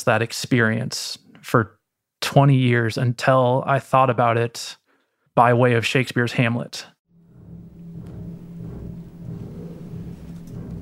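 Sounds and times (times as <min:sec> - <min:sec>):
speech: 0:00.0 - 0:04.8, 0:05.4 - 0:06.9
very low bass chord on double basses and piano: 0:07.2 - 0:10.7.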